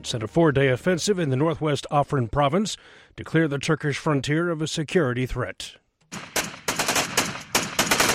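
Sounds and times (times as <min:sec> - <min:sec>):
speech: 0:00.0 - 0:06.4
machine gun fire bursts: 0:06.1 - 0:08.1.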